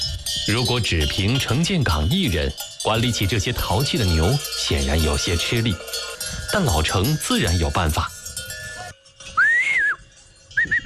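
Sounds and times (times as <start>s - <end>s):
speech: 0.5s - 8.2s
cattle herder whistling to signal his dog: 9.4s - 10.0s, 10.6s - 10.8s.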